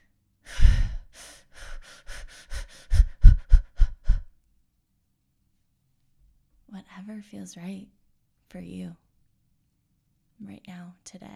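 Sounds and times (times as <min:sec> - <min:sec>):
person breathing in and out: 0:00.5 - 0:04.3
speech: 0:07.1 - 0:09.0, 0:10.4 - 0:11.3.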